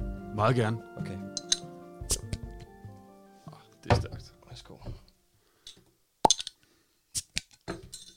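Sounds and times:
speech: 0.4 - 1.2
beer bottle cap clinking: 1.4 - 1.7, 6.3 - 6.5
beer bottle opening pop: 6.2 - 6.5.

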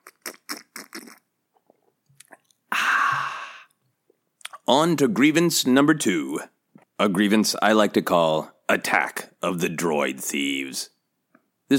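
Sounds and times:
loud breathy slurp of whiskey: 0.0 - 1.2
wet mouth smacks and small clicks while sipping whiskey: 0.0 - 2.6, 3.6 - 4.7
speech: 4.7 - 11.0.

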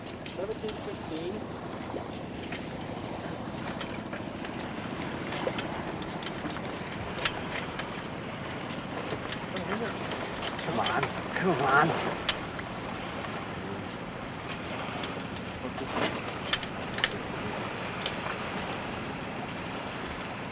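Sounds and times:
boat engine rumble approaching another boat: 0.0 - 20.5
rushing water: 0.0 - 20.5
speech: 0.4 - 2.2, 11.4 - 12.1.

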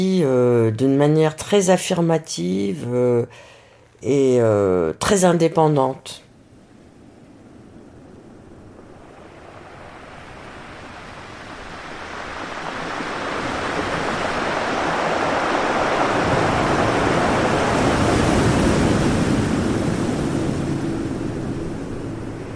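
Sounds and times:
speech: 0.0 - 6.2
Atlantic Ocean waves breaking: 6.3 - 22.5.

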